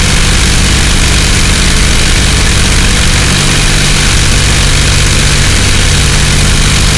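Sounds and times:
Stuka dive bomber engines: 0.0 - 6.9.

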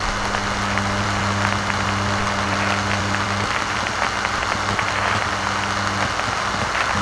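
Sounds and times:
ambient tower atmosphere: 0.0 - 6.9.

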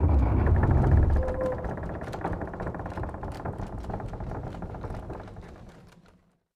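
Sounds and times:
large wooden door opening: 0.0 - 2.6.

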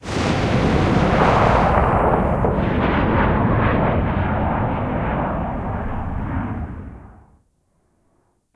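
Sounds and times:
rocket tail: 0.0 - 8.0.

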